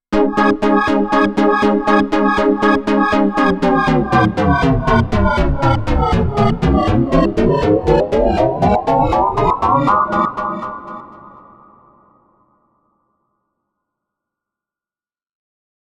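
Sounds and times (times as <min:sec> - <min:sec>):
Korg Layered Motion synthesizer sound: 0:00.2 - 0:11.9.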